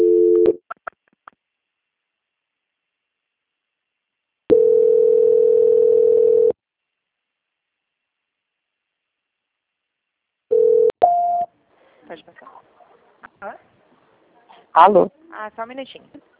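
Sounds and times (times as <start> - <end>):
telephone line tones during call transfer: 4.5 - 6.6, 10.5 - 11.4
speech: 14.8 - 16.3.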